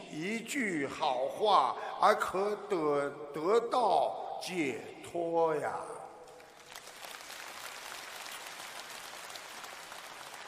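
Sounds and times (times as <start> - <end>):
speech: 0.2 - 6.0
crowd applauding: 6.4 - 10.4.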